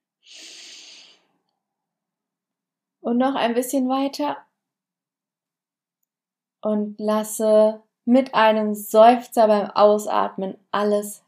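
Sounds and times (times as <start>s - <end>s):
deep inhalation through the nose in a breathing exercise: 0.3s - 1.3s
speech: 3.1s - 4.5s, 6.6s - 11.2s.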